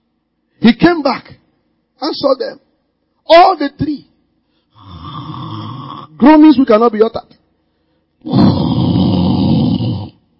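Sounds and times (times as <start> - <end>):
speech: 0.6 - 1.3, 2.0 - 2.6, 3.3 - 4.1, 6.2 - 7.4
loud rattling snore: 4.8 - 6.2, 8.3 - 10.2.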